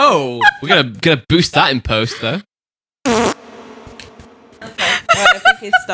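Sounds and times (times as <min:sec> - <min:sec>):
speech: 0:00.1 - 0:02.5, 0:05.2 - 0:05.9
short loud buzzy rasping fart: 0:03.1 - 0:03.4.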